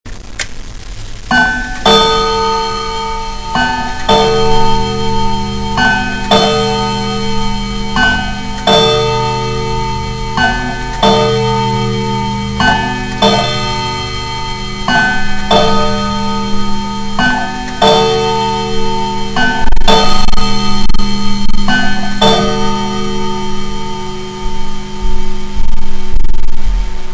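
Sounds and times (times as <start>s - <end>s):
regulator longcase clock: 1.2s - 26.6s.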